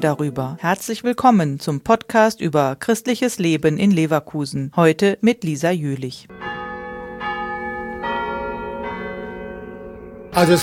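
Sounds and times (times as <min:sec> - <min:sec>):
speech: 0:00.0 - 0:06.5, 0:10.4 - 0:10.6
large church bell tolling: 0:06.3 - 0:10.6.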